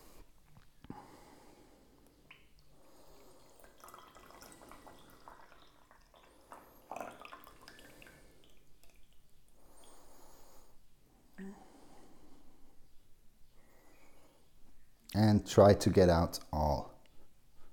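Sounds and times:
small drips of tea: 2.0 - 10.1
brewed green tea being poured out: 2.9 - 10.0
speech: 15.3 - 16.7.

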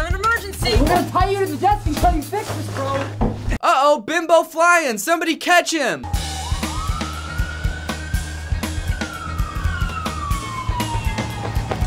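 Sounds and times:
speech: 1.0 - 6.3
police siren wailing: 6.1 - 11.8.

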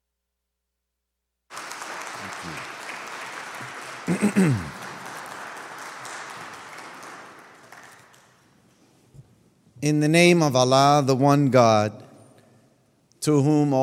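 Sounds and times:
crowd applauding: 1.5 - 8.6
cheering voices: 1.6 - 7.5
speech: 2.4 - 2.7, 4.1 - 4.7, 9.8 - 12.0, 13.2 - 13.8.

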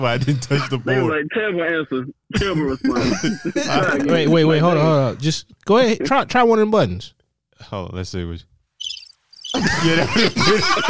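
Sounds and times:
speech: 0.0 - 8.5, 9.5 - 10.8
cricket chirping sound effect: 8.8 - 9.6
loud laughter: 9.5 - 10.8.

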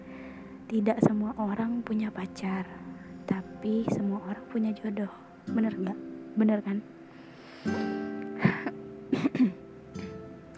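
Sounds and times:
speech: 0.7 - 2.9, 3.6 - 7.0, 7.6 - 7.9, 9.4 - 9.6
person clearing throat: 7.9 - 9.6
person coughing in short bursts: 7.9 - 9.6.

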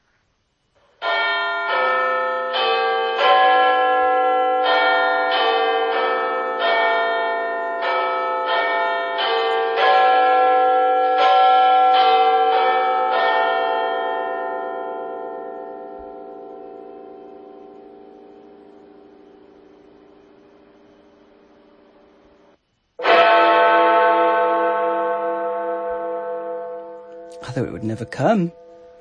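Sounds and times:
clock chimes played by a smart speaker: 1.0 - 29.0
speech: 28.0 - 28.6.

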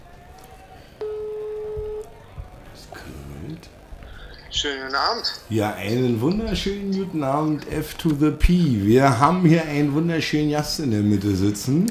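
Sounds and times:
ringback tone on an outgoing phone call: 1.0 - 2.2
speech: 4.6 - 11.8.

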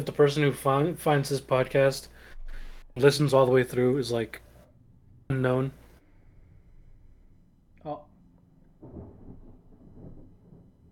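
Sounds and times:
speech: 0.0 - 2.2, 3.0 - 4.4, 5.3 - 5.8, 7.8 - 8.1
rolling thunder from a lightning strike: 8.8 - 10.9.

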